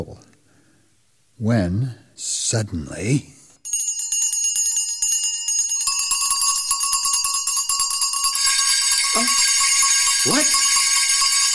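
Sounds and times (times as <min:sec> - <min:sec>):
speech: 0:00.0 - 0:00.3, 0:01.4 - 0:03.4, 0:09.2 - 0:09.4, 0:10.2 - 0:10.5
every bell in a house ringing: 0:03.6 - 0:11.5.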